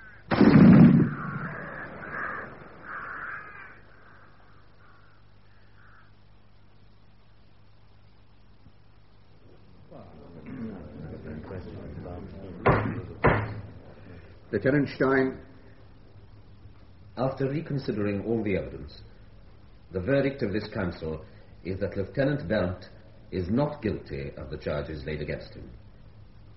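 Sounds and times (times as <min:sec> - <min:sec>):
rifle volley fired at a military execution: 0:00.3 - 0:03.7
sharp knocks: 0:12.6 - 0:13.6
speech: 0:14.6 - 0:15.5, 0:17.2 - 0:19.1, 0:19.9 - 0:25.8.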